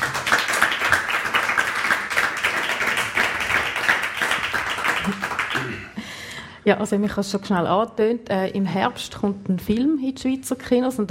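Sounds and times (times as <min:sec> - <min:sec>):
crowd applauding: 0:00.0 - 0:06.0
speech: 0:06.6 - 0:11.0.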